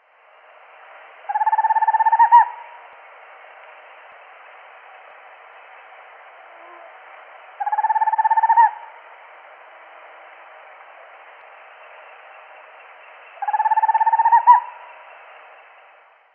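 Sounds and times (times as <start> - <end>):
Megascops choliba owl: 1.3 - 2.8, 7.6 - 8.9, 13.4 - 15.0.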